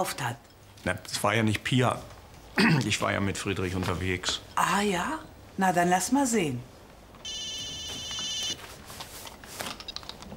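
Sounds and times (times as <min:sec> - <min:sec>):
speech: 0:00.0 - 0:07.4
telephone ringing with a bright electronic tone: 0:07.2 - 0:08.6.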